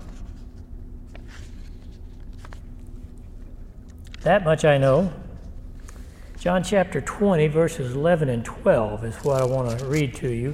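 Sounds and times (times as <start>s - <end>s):
papers being shuffled and rummaged through: 0.0s - 3.2s, 9.1s - 10.5s
low steady hum: 0.0s - 10.5s
speech: 4.2s - 5.2s, 6.4s - 10.5s.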